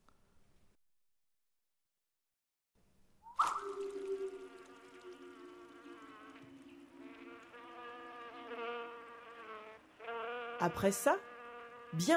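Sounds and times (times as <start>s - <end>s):
fly buzzing: 3.4s - 12.1s
speech: 10.6s - 11.3s, 11.9s - 12.1s.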